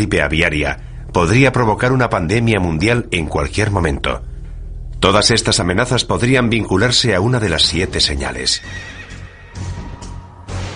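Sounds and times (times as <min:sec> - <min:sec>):
speech: 0:00.0 - 0:04.3, 0:05.0 - 0:09.0
low rumbling background: 0:00.0 - 0:08.6
horse neighing: 0:08.4 - 0:09.8.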